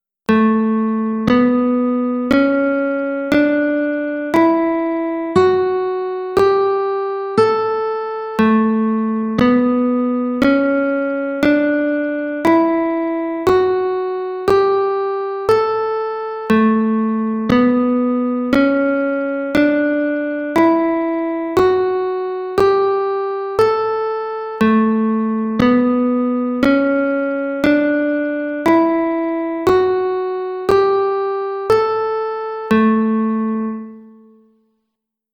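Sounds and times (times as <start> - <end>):
guitar playing an A Mixolydian scale: 0.3 - 34.5.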